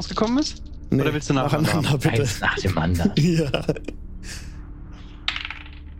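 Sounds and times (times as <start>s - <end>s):
speech: 0.0s - 4.5s
laughter: 1.4s - 3.9s
dice rolled clattering onto a hard surface: 5.2s - 5.9s.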